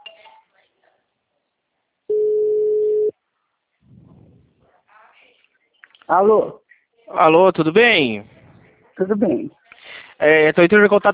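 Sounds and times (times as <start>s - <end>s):
electronic telephone tone for an incoming call: 2.1s - 3.1s
speech: 6.1s - 8.3s, 9.0s - 9.6s, 10.2s - 11.1s.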